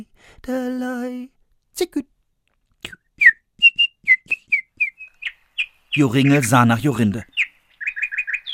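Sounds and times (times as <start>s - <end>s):
speech: 0.0s - 2.1s, 6.0s - 7.4s
person whistling nightingale-like bird song: 2.8s - 5.4s.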